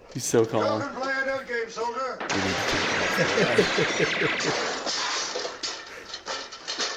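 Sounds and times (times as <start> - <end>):
speech: 0.1 - 1.1, 1.7 - 5.0
sharp gunshots: 2.2 - 6.9
laughter: 2.4 - 4.9.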